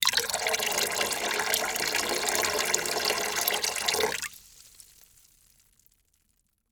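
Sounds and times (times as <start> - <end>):
small fast stream of water pouring into water in a plastic bucket: 0.0 - 4.4.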